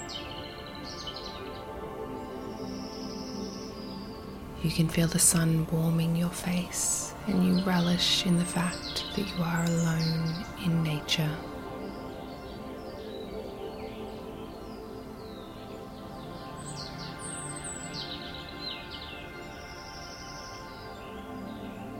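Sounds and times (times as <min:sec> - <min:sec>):
birds chirping and twittering in a sunny meadow: 0:00.0 - 0:21.9
speech: 0:04.6 - 0:11.5.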